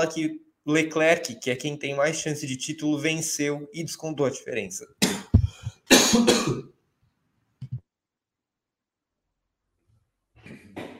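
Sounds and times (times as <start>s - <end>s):
speech: 0.0s - 5.2s, 6.1s - 6.7s
person coughing and choking: 5.0s - 6.7s.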